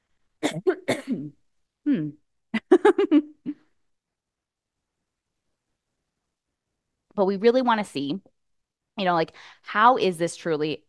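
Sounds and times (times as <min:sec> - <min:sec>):
short raspy coughs: 0:00.4 - 0:01.3
person clearing a tickle in the throat: 0:00.4 - 0:02.2
speech: 0:00.5 - 0:02.2, 0:07.2 - 0:08.3, 0:09.0 - 0:10.8.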